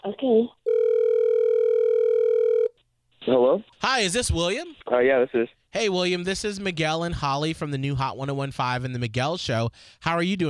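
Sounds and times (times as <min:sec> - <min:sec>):
speech: 0:00.0 - 0:00.6, 0:03.2 - 0:10.4
continuous steady-pitched telephone tone while a call is placed: 0:00.7 - 0:02.8.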